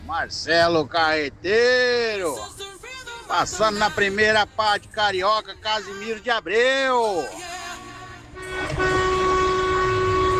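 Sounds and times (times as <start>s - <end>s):
speech: 0.1s - 2.7s, 3.3s - 7.5s
vehicle horns honking: 7.8s - 10.3s.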